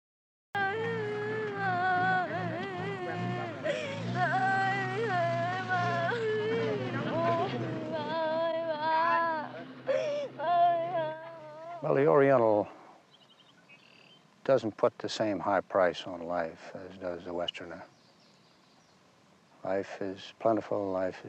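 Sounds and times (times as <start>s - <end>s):
child crying and sobbing: 0.6s - 11.9s
speech: 11.8s - 12.8s, 14.4s - 17.9s, 19.6s - 21.2s.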